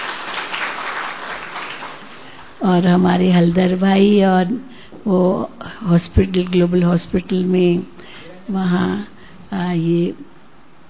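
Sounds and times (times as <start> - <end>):
audience clapping to welcome a guest: 0.0 - 2.6
speech: 2.6 - 10.3.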